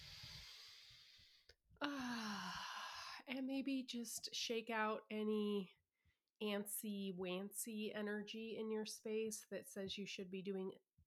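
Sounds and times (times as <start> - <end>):
deep breath drawn in and let out with a voiced sigh: 0.0 - 3.2
speech: 3.4 - 5.8, 6.4 - 10.8.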